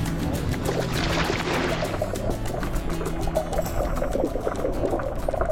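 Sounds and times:
underwater bubbling and churning: 0:00.1 - 0:05.4
diver splashing into the water while diving: 0:00.5 - 0:04.0.

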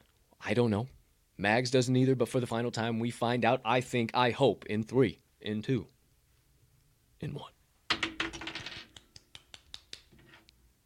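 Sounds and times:
speech: 0:00.5 - 0:06.0, 0:07.2 - 0:07.6
handful of dice clattering onto a hard surface: 0:07.9 - 0:09.0.

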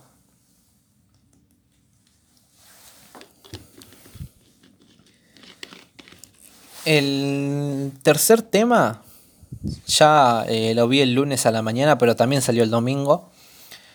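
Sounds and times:
plastic water bottle crinkling and crunching: 0:02.9 - 0:06.9
soft gulps of drinking water: 0:03.4 - 0:04.5
speech: 0:06.8 - 0:09.1, 0:09.9 - 0:13.3.

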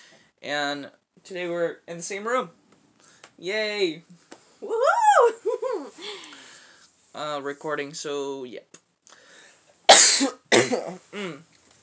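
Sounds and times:
speech: 0:00.4 - 0:02.6, 0:03.4 - 0:05.4, 0:07.2 - 0:08.8, 0:10.2 - 0:11.5
person coughing: 0:09.9 - 0:11.4.

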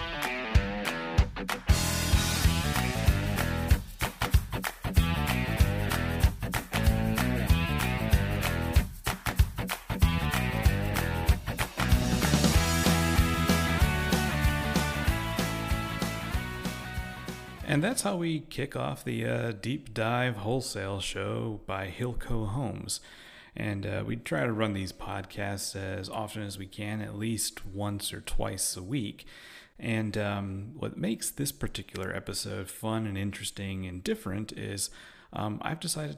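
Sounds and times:
upbeat instrumental podcast intro theme: 0:00.0 - 0:18.2
speech: 0:17.8 - 0:36.1.

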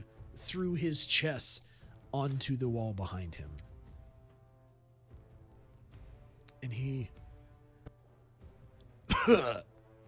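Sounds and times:
speech: 0:00.5 - 0:03.7, 0:06.6 - 0:07.2, 0:09.2 - 0:09.7
voice imitating a man coughing up blood: 0:09.1 - 0:09.7.

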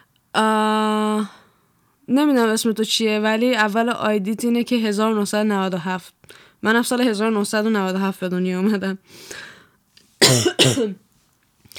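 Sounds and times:
speech: 0:00.4 - 0:01.4, 0:02.1 - 0:09.5, 0:10.2 - 0:11.0
faint breath: 0:09.1 - 0:09.8
person with a dry throat coughing harshly: 0:10.2 - 0:11.0.

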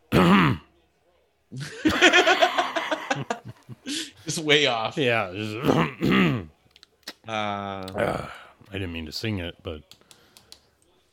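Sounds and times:
voiced throat clearing: 0:00.1 - 0:00.7, 0:05.6 - 0:06.5
speech: 0:01.5 - 0:01.8, 0:04.4 - 0:06.5, 0:07.3 - 0:10.0
laughter: 0:01.6 - 0:04.2.

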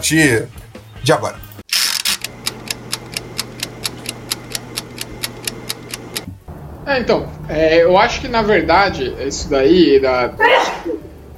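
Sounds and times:
speech: 0:00.0 - 0:01.4, 0:06.9 - 0:11.1
sneeze: 0:10.4 - 0:11.0.

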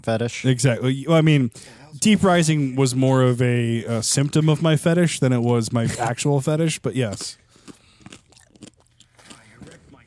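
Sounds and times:
speech: 0:00.0 - 0:07.4
chewing and crunching food into microphone: 0:05.8 - 0:10.0
wet mouth sounds: 0:07.1 - 0:10.0.

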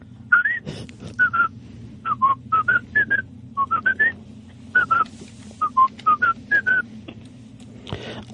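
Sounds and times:
steady low hum: 0:00.0 - 0:08.3
person whistling a tune: 0:00.3 - 0:00.6, 0:02.1 - 0:04.2, 0:04.8 - 0:06.8.

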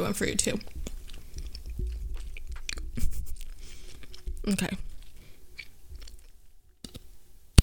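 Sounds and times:
speech: 0:00.1 - 0:00.8, 0:04.4 - 0:04.9
soft wet gum chewing and mouth sounds: 0:00.4 - 0:06.6
gum bubble bursting with a sharp pop: 0:00.7 - 0:04.8.

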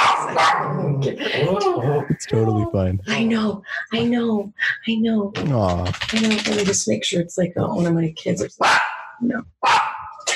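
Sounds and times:
small dog barking: 0:00.0 - 0:00.8, 0:08.6 - 0:10.3
speech: 0:00.3 - 0:10.3
laughter: 0:01.0 - 0:03.1, 0:05.5 - 0:06.0.

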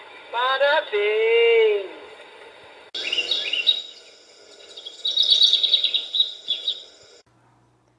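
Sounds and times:
speech: 0:00.3 - 0:01.4
birds chirping and twittering: 0:03.0 - 0:07.2.

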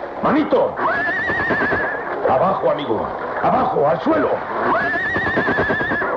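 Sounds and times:
speech: 0:00.2 - 0:05.9
horse whinnying: 0:00.8 - 0:02.5, 0:04.5 - 0:06.1.

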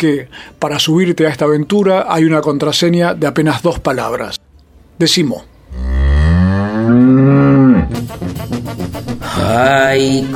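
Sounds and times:
speech: 0:00.0 - 0:04.4, 0:05.0 - 0:05.9, 0:06.9 - 0:10.3
cow mooing: 0:05.7 - 0:08.0.

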